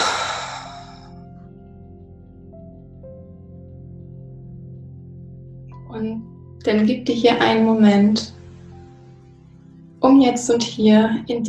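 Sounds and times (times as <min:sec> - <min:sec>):
loud exhale through the mouth: 0:00.0 - 0:01.2
speech: 0:05.9 - 0:08.4, 0:10.0 - 0:11.4.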